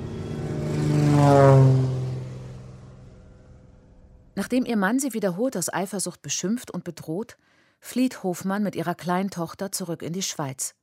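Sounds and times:
small propeller airplane taking off in Kenya: 0.0s - 4.4s
speech: 4.5s - 10.8s.

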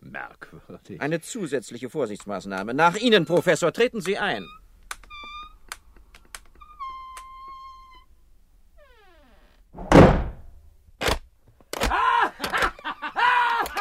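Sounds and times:
speech: 0.7s - 4.6s
heavy door slamming shut: 9.8s - 10.6s
sharp knock: 9.8s - 10.6s
laughter: 11.9s - 13.8s.

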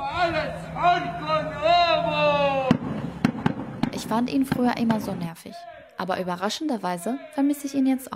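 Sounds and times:
night caller man shouting a drawn-out wavering call: 0.0s - 2.8s, 5.6s - 6.0s, 7.0s - 7.4s
speech: 4.1s - 8.1s.

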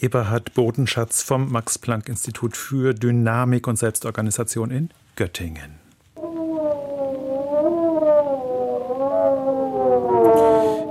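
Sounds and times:
speech: 0.0s - 5.8s
wolves howling: 6.2s - 10.9s.

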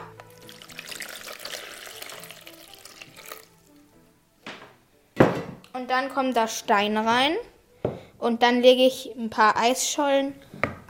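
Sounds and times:
water pouring into a container for a model of Antarctica: 0.2s - 3.8s
speech: 5.8s - 7.5s, 8.2s - 10.8s.

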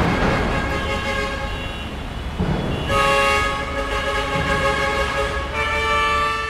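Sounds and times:
city street traffic engine rumble in Jakarta Indonesia: 0.0s - 6.4s
many trucks passing on a city street in Jakarta Indonesia: 0.0s - 6.4s.

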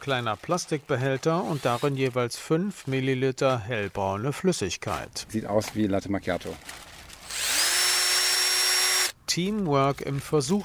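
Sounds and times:
speech: 0.0s - 6.9s, 9.3s - 10.6s
cordless drill boring holes into Riesling grapevine trunks in an experimental vineyard: 7.2s - 9.2s.

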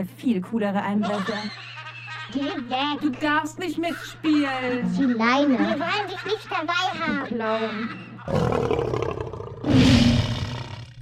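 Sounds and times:
speech: 0.0s - 1.7s, 2.3s - 9.0s
laughter: 0.8s - 6.1s, 6.8s - 8.5s
lion roaring: 8.3s - 11.0s.

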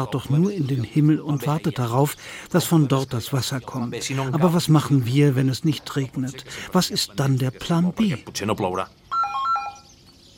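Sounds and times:
speech: 0.0s - 9.0s
electronic telephone ringtone with bright beeping tones: 9.1s - 10.3s.

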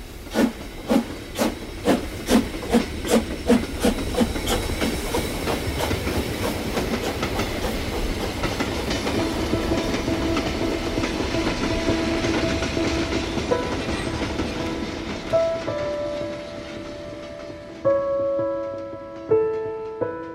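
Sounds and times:
train brake or wheel squealing: 0.0s - 8.4s
moving train clattering on rails: 0.0s - 20.3s.

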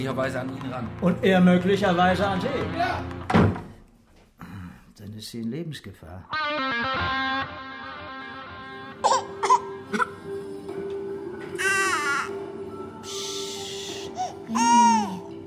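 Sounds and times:
speech: 0.0s - 3.6s, 5.0s - 7.6s
baby crying: 9.0s - 10.2s, 11.6s - 15.4s.

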